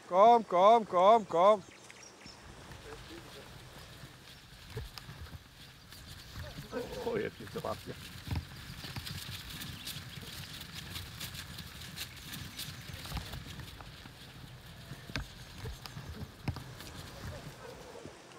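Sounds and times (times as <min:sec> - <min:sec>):
speech: 0:00.1 - 0:01.8, 0:06.8 - 0:08.2
herd of cattle hooves thudding on the ground: 0:01.5 - 0:18.3.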